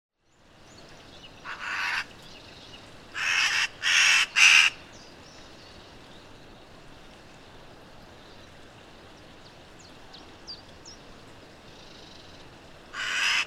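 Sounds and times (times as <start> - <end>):
Eurasian magpie Pica pica giving harsh chacking notes: 1.5 - 2.0, 3.2 - 4.8, 13.0 - 13.4.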